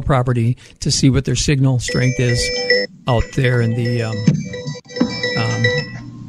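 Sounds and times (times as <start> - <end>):
speech: 0.0 - 4.6
mobile phone ringtone playing a bright electronic melody: 1.9 - 6.1.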